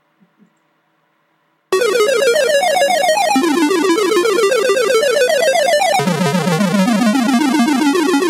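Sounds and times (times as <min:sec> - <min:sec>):
chiptune song made with a tracker: 0:01.7 - 0:08.2.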